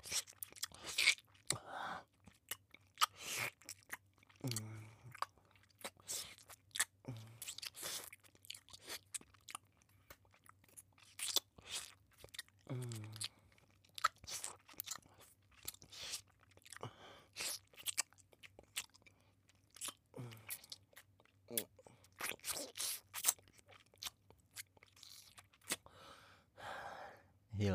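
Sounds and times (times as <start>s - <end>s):
crunchy chewing of medicine: 0.0s - 25.9s.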